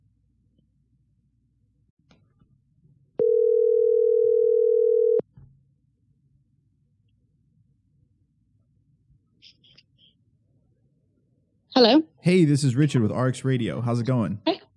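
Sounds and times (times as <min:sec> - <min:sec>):
steady telephone ring tone: 0:03.2 - 0:05.2
speech: 0:11.8 - 0:14.5.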